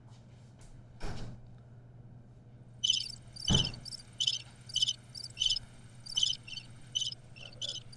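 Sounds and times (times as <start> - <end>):
crickets chirping: 2.8 - 7.9
sharp thuds: 3.2 - 4.2.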